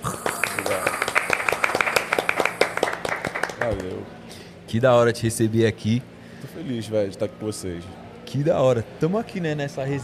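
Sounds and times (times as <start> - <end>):
a few people clapping: 0.0 - 4.0
speech: 3.7 - 10.0.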